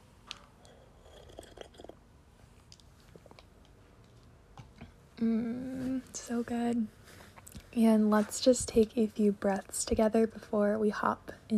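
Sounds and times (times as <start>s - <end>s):
person sipping hot spiced chai tea: 0.6s - 2.0s
speech: 5.2s - 7.0s, 7.7s - 11.5s.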